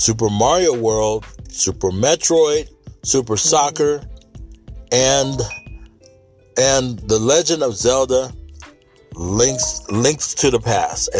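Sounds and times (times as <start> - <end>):
speech: 0.0 - 4.1, 4.9 - 5.6, 6.6 - 8.4, 9.1 - 11.1
soft high electronic phone chime: 5.2 - 5.9, 9.4 - 10.2
faint tonal pings: 5.4 - 5.9.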